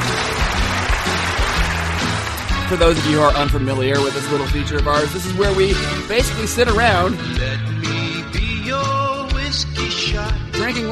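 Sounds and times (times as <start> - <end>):
clapping and cheering applause sound effect: 0.0 - 4.2
low stepping musical bass line: 0.0 - 10.9
speech: 2.7 - 8.0, 10.7 - 10.9.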